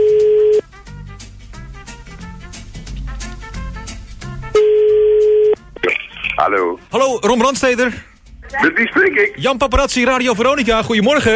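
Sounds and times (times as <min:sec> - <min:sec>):
telephone ringback tone while a call is placed: 0:00.0 - 0:00.6, 0:04.6 - 0:05.6
quiet music: 0:00.0 - 0:11.3
speech: 0:06.5 - 0:11.3.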